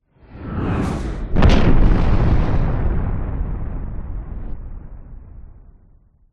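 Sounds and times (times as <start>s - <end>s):
designed jet airplane crash explosion: 0.8s - 5.6s.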